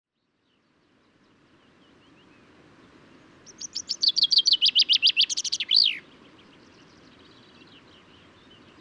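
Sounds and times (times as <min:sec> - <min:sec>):
male common chaffinch singing in Důl Bílého Labe, Czech Republic: 0:00.1 - 0:08.7.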